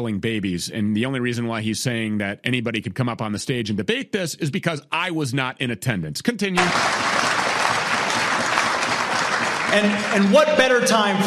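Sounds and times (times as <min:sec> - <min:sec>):
speech: 0:00.0 - 0:07.2, 0:09.7 - 0:11.2
large audience applause: 0:06.6 - 0:11.2.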